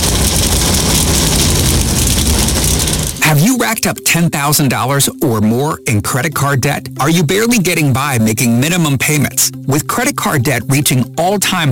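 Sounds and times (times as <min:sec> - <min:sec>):
Navy Hornet jets blasting overhead: 0:00.0 - 0:03.2
race car engines roaring at a pit lane: 0:00.0 - 0:03.5
speech: 0:03.5 - 0:11.7.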